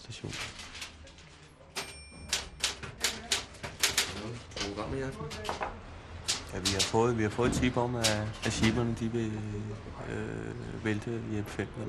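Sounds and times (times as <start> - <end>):
speech: 0.1 - 0.6, 4.8 - 5.8, 6.5 - 11.8
typewriter clacking in a small office at a station: 0.2 - 9.0.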